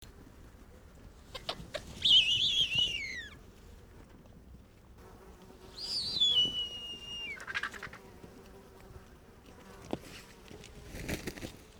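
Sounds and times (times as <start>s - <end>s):
Bearded Vulture Gypaetus barbatus: 1.2s - 3.5s, 5.8s - 8.2s.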